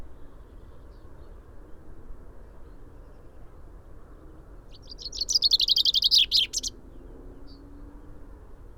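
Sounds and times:
quiet low background noise: 0.0s - 8.7s
common chaffinch Fringilla coelebs song: 4.7s - 6.7s.

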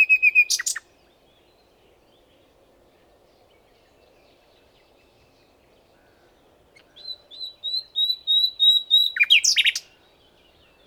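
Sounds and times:
common nightingale song, Luscinia megarhynchos: 0.0s - 0.9s, 6.8s - 10.8s.

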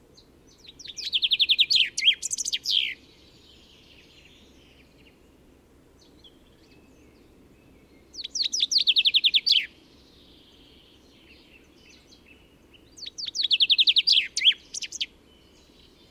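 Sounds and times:
Common chaffinch Fringilla coelebs singing: 0.0s - 5.4s, 6.0s - 16.0s.

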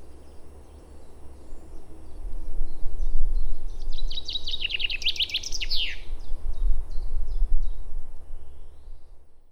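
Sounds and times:
Common chaffinch Fringilla coelebs song: 0.0s - 6.1s
low continuous hum: 0.0s - 9.4s.

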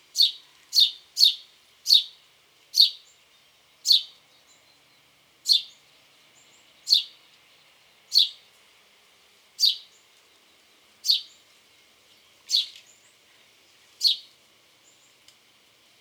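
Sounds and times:
house sparrow Passer domesticus chirping: 0.2s - 2.1s, 2.8s - 3.0s, 3.8s - 4.6s, 5.5s - 5.8s, 6.8s - 7.2s, 8.1s - 8.4s, 9.6s - 9.9s, 11.0s - 11.4s.

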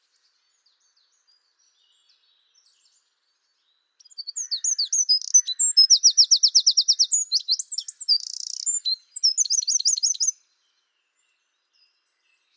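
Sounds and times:
Eurasian wren Troglodytes troglodytes singing: 4.0s - 10.3s.

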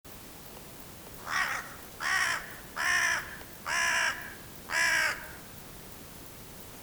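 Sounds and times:
background hiss: 0.1s - 6.8s
Carrion crow Corvus corone cawing: 1.2s - 5.5s.

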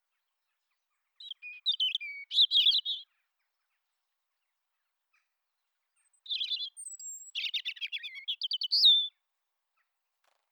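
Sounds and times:
European robin Erithacus rubecula singing: 1.2s - 3.0s, 6.0s - 9.1s.

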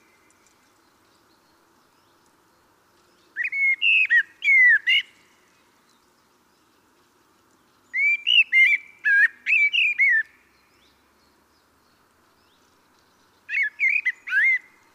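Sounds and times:
Common blackbird Turdus merula mellow flute-like whistled phrases: 3.4s - 5.1s, 8.0s - 10.4s, 13.5s - 14.7s.

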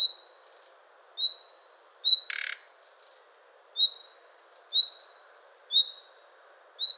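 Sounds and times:
Common nightingale whistle calls: 0.0s - 2.6s, 3.8s - 6.1s, 6.8s - 6.9s.

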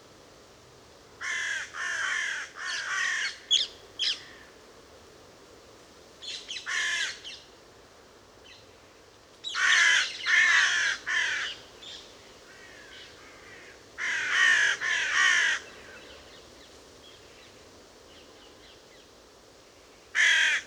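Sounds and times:
Carrion crow (Corvus corone) cawing harshly: 1.2s - 3.5s, 6.7s - 7.2s, 9.6s - 11.6s, 12.5s - 15.7s, 20.2s - 20.6s
quieter background Carrion crow caw: 1.2s - 4.6s, 6.5s - 7.4s, 9.5s - 16.2s, 20.1s - 20.6s.

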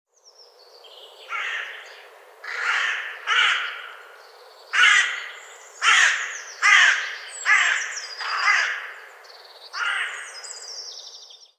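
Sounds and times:
carrion crow Corvus corone cawing: 1.3s - 10.5s.

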